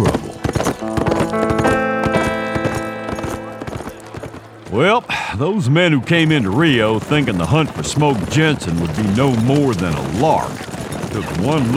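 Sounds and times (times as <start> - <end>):
soft music: 0.0 - 6.8
ridden horse hooves clip-clopping: 0.0 - 11.7
speech: 4.8 - 11.7.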